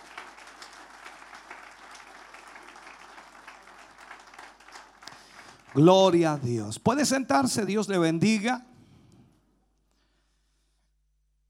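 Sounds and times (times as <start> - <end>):
congregation clapping in praise during an evening church service: 0.0 - 8.2
speech: 5.7 - 8.7.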